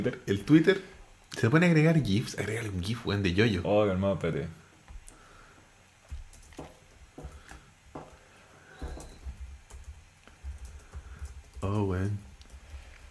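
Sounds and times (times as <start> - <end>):
speech: 0.0 - 4.6
steady hiss: 0.0 - 13.0
typing on a computer keyboard: 6.1 - 7.6, 8.8 - 13.0.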